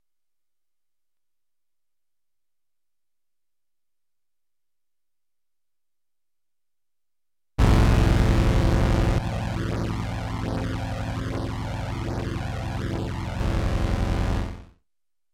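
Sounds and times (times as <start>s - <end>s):
synthesizer ensemble effect: 7.6s - 14.7s.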